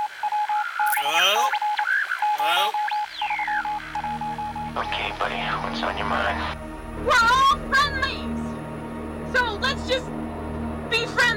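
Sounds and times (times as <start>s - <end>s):
crackly radio transmission static on the guard frequency: 0.0s - 6.6s
warbling distorted voice fragments with a strange accent: 0.9s - 1.6s, 2.4s - 2.9s, 4.8s - 6.6s
steady hum-like tone in radio transmission: 0.9s - 11.3s
speech: 4.8s - 8.4s, 9.3s - 10.3s.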